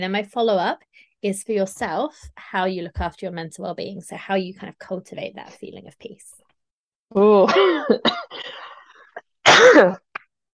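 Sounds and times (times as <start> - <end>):
speech: 0.0 - 6.4, 7.1 - 8.4, 9.6 - 10.0
woman coughing: 7.4 - 10.1.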